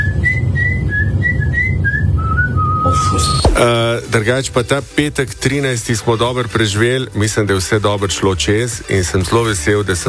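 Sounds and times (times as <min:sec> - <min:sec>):
person whistling a tune: 0:00.0 - 0:03.6
low rumble: 0:00.0 - 0:06.0
speech: 0:03.0 - 0:10.0.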